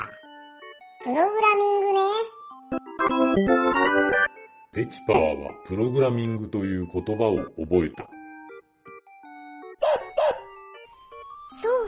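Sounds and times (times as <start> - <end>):
speech: 1.0 - 2.3, 3.4 - 4.2, 4.8 - 8.2
electronic tune with sustained synth notes: 2.5 - 4.7
dog barking: 9.8 - 10.6.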